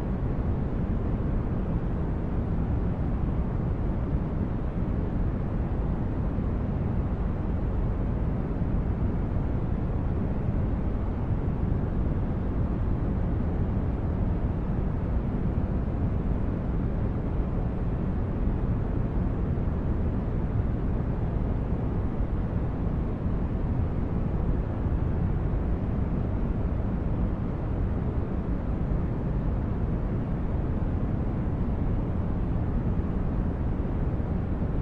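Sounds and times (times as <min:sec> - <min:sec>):
white noise weighted toward a deep rumble: 0:00.0 - 0:34.8.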